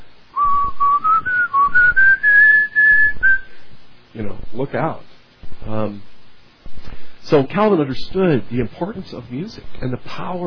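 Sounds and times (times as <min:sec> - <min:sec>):
person whistling a slow hymn melody: 0:00.4 - 0:03.6
speech: 0:04.5 - 0:06.1, 0:07.3 - 0:10.4.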